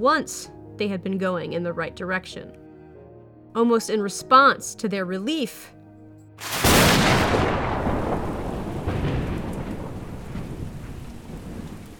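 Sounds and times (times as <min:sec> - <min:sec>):
speech: 0:00.0 - 0:02.6, 0:03.6 - 0:05.8, 0:06.4 - 0:06.6
thunder crack and rumble in a thunderstorm at sea: 0:06.4 - 0:11.9
steady hissing rain at sea: 0:07.6 - 0:11.9.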